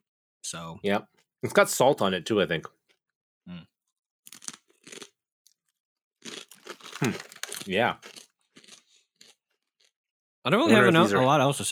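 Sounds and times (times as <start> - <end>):
speech: 0.5 - 2.8, 3.4 - 3.7, 7.0 - 8.2, 10.4 - 11.7
crunchy bites and chewing of salted fried wonton wrapper chips: 4.3 - 10.0.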